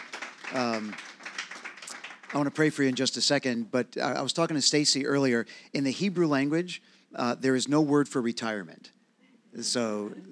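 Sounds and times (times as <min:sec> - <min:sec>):
audience applauding with dense steady clapping: 0:00.0 - 0:03.3
speech: 0:00.5 - 0:01.1, 0:02.3 - 0:10.3.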